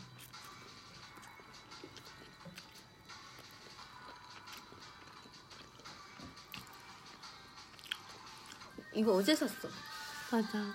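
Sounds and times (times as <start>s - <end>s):
chewing japchae glass noodles: 0.0s - 8.9s
speech: 9.0s - 10.7s.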